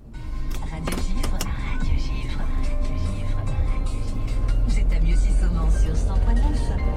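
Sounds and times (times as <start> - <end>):
engine rumble inside a moving car in a valley in Haute-Savoie France: 0.0 - 6.9
road drone inside a moving car: 0.0 - 6.9.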